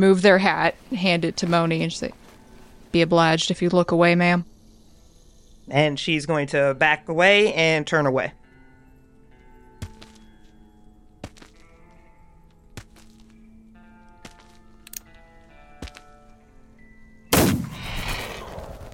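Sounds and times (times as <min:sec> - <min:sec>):
speech: 0:00.0 - 0:02.2, 0:02.9 - 0:04.5, 0:05.7 - 0:08.4
gunshots: 0:17.3 - 0:18.9.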